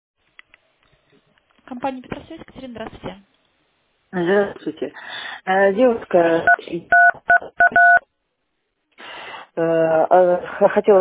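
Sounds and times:
speech: 1.7s - 3.4s, 4.1s - 7.1s, 9.6s - 10.9s
telephone keypad tones from touchscreen presses during a call: 6.5s - 8.0s.

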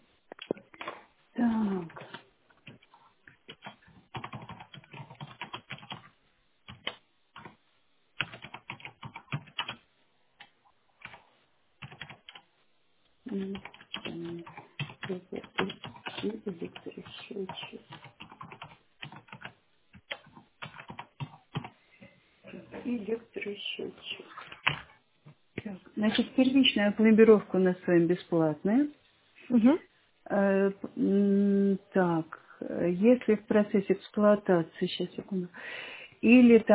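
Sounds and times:
rapid typing on a computer keyboard: 3.5s - 6.1s, 6.7s - 7.6s, 8.2s - 9.8s, 11.8s - 12.4s, 13.3s - 21.8s
speech: 26.0s - 36.7s.

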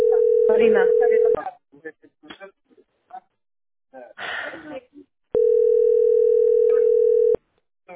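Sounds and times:
steady telephone tone of a failed call: 0.0s - 1.4s, 5.4s - 7.4s
people talking: 0.0s - 3.3s.

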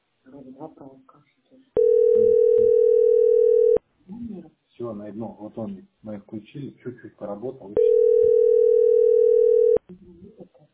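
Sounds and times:
speech: 0.4s - 2.9s, 4.9s - 8.5s
telephone dial tone from a second phone: 1.8s - 3.8s, 7.8s - 9.8s.

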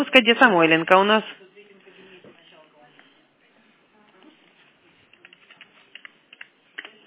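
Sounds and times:
speech: 0.0s - 1.4s
faint noise: 0.0s - 7.0s
typing on a computer keyboard: 5.1s - 7.0s.

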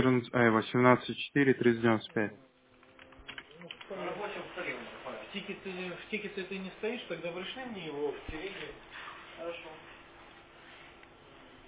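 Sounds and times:
speech: 0.0s - 2.5s, 5.3s - 9.9s
rapid clicking of keys on a computer keyboard: 2.8s - 3.9s.

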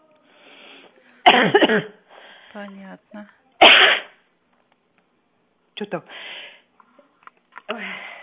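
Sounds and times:
person coughing from an itchy throat: 1.2s - 1.9s, 3.6s - 4.1s
speech: 1.4s - 3.4s, 5.8s - 6.4s.

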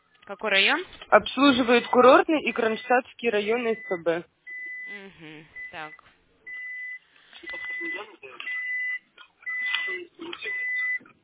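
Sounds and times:
speech: 0.3s - 6.1s, 9.9s - 10.7s
car warning chime beeping while driving: 1.9s - 5.0s, 5.6s - 11.0s.

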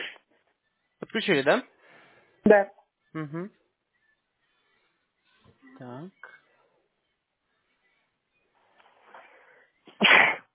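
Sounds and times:
speech: 1.1s - 1.7s, 2.4s - 3.6s, 5.8s - 6.3s
person sneezing: 9.9s - 10.5s.

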